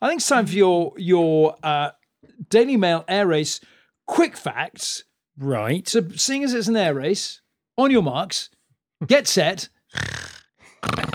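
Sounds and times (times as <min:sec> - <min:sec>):
speech: 0:00.0 - 0:11.0
person imitating snoring: 0:09.9 - 0:11.1.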